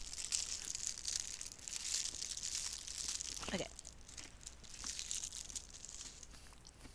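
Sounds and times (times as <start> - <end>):
plastic snack wrapper crinkling and rustling: 0.0 - 6.8
person speaking a single short word: 3.2 - 4.4.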